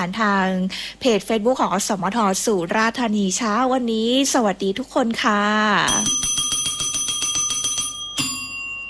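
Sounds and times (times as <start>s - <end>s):
speech: 0.0s - 6.4s
bright bell dinging: 5.9s - 8.8s.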